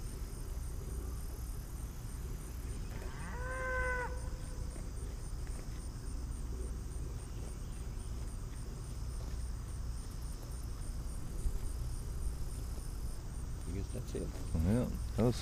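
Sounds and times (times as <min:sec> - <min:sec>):
steady hiss of outdoor ambience: 0:00.0 - 0:15.4
cow mooing in a pasture: 0:02.9 - 0:04.7
speech: 0:14.0 - 0:15.4.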